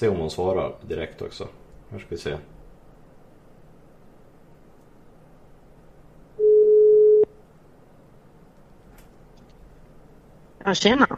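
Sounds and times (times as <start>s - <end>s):
speech: 0.0s - 2.6s, 10.6s - 11.1s
telephone ringing tone: 6.4s - 7.3s.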